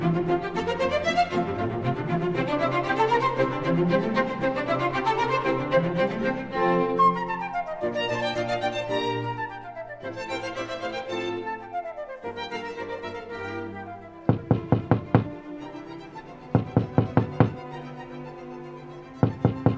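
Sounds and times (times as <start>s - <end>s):
soft instrumental music: 0.0s - 19.7s
firm knocking on a door: 14.3s - 15.4s, 16.6s - 17.6s, 19.2s - 19.7s.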